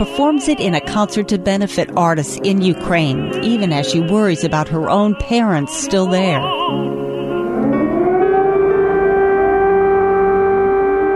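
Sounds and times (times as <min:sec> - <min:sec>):
speech: 0:00.0 - 0:07.0
air raid siren wailing: 0:06.0 - 0:11.1.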